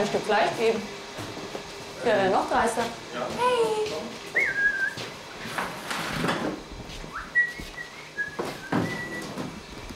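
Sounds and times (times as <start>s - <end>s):
speech: 0.0s - 1.4s, 2.0s - 4.6s
magpie whistling in a kitchen: 4.4s - 5.0s, 7.2s - 9.3s.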